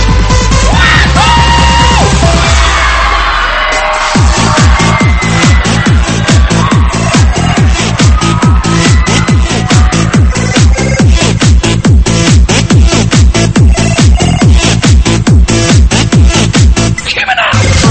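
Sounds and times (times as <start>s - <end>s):
crowd screaming and cheering loudly: 0.0s - 17.8s
thumping electronic dance music with pounding beat: 0.0s - 17.8s.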